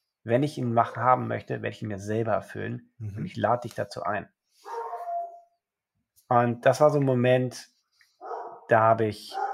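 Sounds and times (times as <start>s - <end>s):
speech: 0.2s - 4.4s, 6.3s - 7.7s, 8.7s - 9.4s
drawn-out dog bark: 4.7s - 5.4s, 8.2s - 8.7s, 9.3s - 9.5s.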